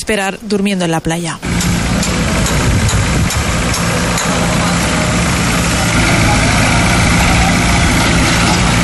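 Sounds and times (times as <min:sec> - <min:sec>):
speech: 0:00.0 - 0:02.2
construction machinery engine rumble at a harbour: 0:01.4 - 0:08.8.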